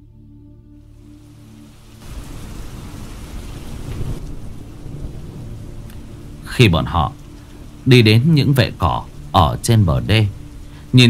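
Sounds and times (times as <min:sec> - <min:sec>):
heavy rain in a thunderstorm: 0:00.8 - 0:11.0
deep rumbling thunder: 0:02.0 - 0:09.4
speech: 0:06.6 - 0:07.2, 0:07.8 - 0:11.0.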